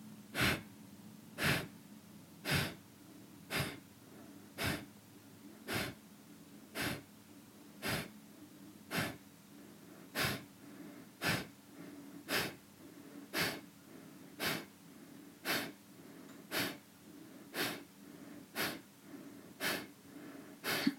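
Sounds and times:
forceful rhythmic nasal exhales of a kriya breathing exercise: 0:00.4 - 0:00.7, 0:01.4 - 0:01.7, 0:02.4 - 0:02.8, 0:03.5 - 0:03.8, 0:04.6 - 0:04.9, 0:05.7 - 0:06.0, 0:06.8 - 0:07.1, 0:07.8 - 0:08.1, 0:08.9 - 0:09.2, 0:10.1 - 0:10.5, 0:11.2 - 0:11.5, 0:12.2 - 0:12.6, 0:13.3 - 0:13.7, 0:14.4 - 0:14.7, 0:15.4 - 0:15.8, 0:16.5 - 0:16.8, 0:17.5 - 0:17.9, 0:18.5 - 0:18.8, 0:19.6 - 0:20.9.

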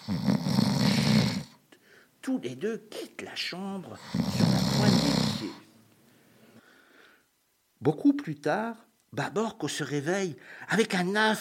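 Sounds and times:
loud rasping snore: 0:00.0 - 0:01.6, 0:04.0 - 0:05.6
speech: 0:00.1 - 0:00.3, 0:02.3 - 0:05.7, 0:07.8 - 0:11.3.

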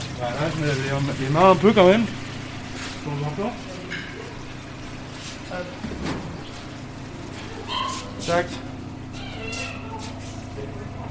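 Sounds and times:
steady low hum: 0:00.0 - 0:11.1
speech: 0:00.2 - 0:02.2, 0:03.0 - 0:03.8, 0:05.5 - 0:06.2, 0:08.2 - 0:08.7
small dog whining: 0:07.5 - 0:08.3, 0:09.1 - 0:10.3.

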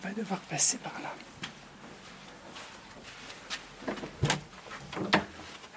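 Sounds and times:
speech: 0:00.0 - 0:01.5
cloister door being opened and shut: 0:03.8 - 0:05.4.

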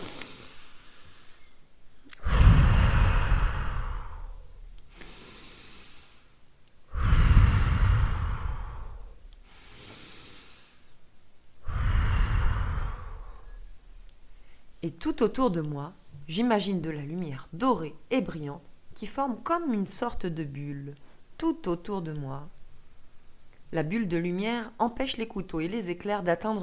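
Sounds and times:
deep slow breaths with eyes closed: 0:00.0 - 0:11.0, 0:11.6 - 0:14.8
speech: 0:14.8 - 0:22.6, 0:23.7 - 0:26.6.

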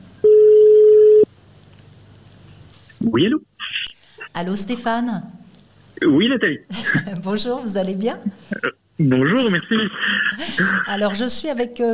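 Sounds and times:
telephone line ringing tone during a call: 0:00.2 - 0:01.3
speech: 0:03.0 - 0:03.8, 0:04.4 - 0:05.4, 0:06.0 - 0:11.9
laughter: 0:09.0 - 0:11.2.

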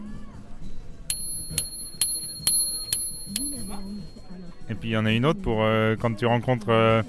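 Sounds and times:
small bicycle bell ringing as a warning: 0:01.1 - 0:04.7
speech: 0:04.7 - 0:07.0.

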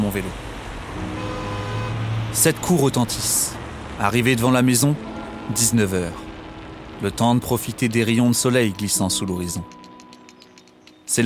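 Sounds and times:
steady rumble of traffic noise: 0:00.0 - 0:11.2
speech: 0:00.1 - 0:01.2, 0:02.3 - 0:06.2, 0:07.0 - 0:09.8
car horns honking in a traffic jam: 0:01.0 - 0:02.3, 0:05.0 - 0:06.8.

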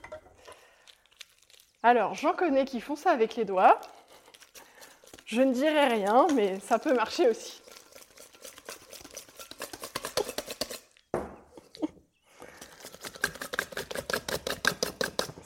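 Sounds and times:
speech: 0:01.8 - 0:04.0, 0:05.3 - 0:07.6
butter mashed in a bowl to soften it for cookies: 0:04.3 - 0:11.0, 0:12.6 - 0:15.4.

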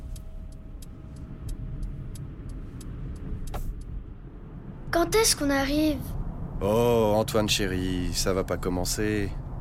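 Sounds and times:
turn signal ticking: 0:00.0 - 0:04.2
car engine starting and driving away: 0:00.0 - 0:09.6
speech: 0:04.9 - 0:09.4.

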